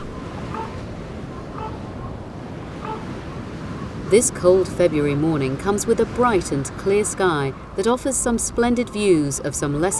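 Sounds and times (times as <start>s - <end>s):
wind whipping against bare cliffs on a cold clear February morning: 0.0s - 7.9s
speech: 4.1s - 9.9s.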